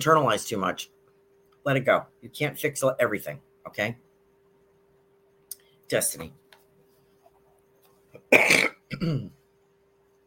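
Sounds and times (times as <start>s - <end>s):
speech: 0.0s - 1.0s, 1.6s - 4.0s, 5.9s - 6.4s, 8.3s - 9.4s
person coughing: 8.2s - 9.4s.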